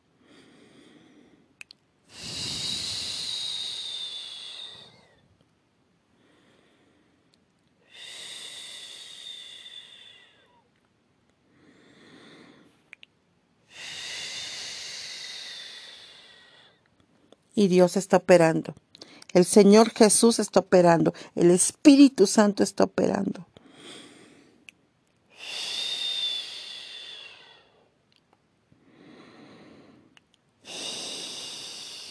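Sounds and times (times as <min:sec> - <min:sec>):
deep breathing during a guided breathing exercise: 0:00.0 - 0:05.4, 0:06.1 - 0:10.7, 0:11.4 - 0:12.9, 0:13.6 - 0:17.4, 0:23.5 - 0:24.7, 0:25.3 - 0:28.0, 0:28.8 - 0:32.0
speech: 0:17.6 - 0:24.0.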